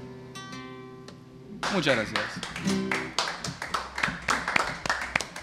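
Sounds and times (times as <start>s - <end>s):
timid applause: 1.6s - 5.3s
speech: 1.7s - 2.8s.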